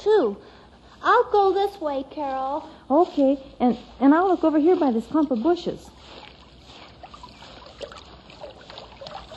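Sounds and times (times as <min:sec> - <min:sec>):
speech: 0:00.1 - 0:06.3
brook water flowing: 0:04.7 - 0:09.3.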